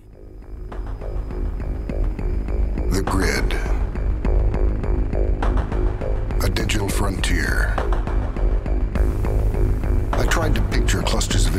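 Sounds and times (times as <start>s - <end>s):
synthesizer and orchestra film theme music: 0.0s - 11.5s
speech: 3.0s - 3.6s.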